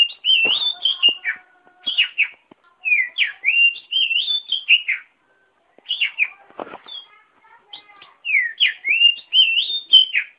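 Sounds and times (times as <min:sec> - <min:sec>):
oriental magpie-robin song: 0:00.0 - 0:05.1, 0:05.9 - 0:06.3, 0:08.2 - 0:10.3.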